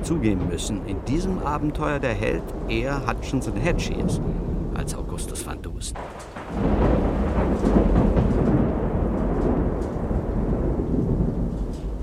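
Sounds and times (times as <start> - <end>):
deep rumbling thunder over a harbor: 0.0 - 12.0
heavy rain over a harbor: 0.0 - 12.0
speech: 0.1 - 8.4.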